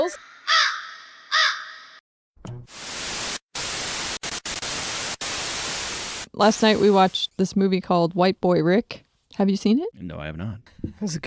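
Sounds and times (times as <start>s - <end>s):
speech: 0.0s - 0.3s, 6.4s - 11.2s
crow cawing: 0.0s - 2.0s
loud steady static hiss: 2.7s - 7.3s.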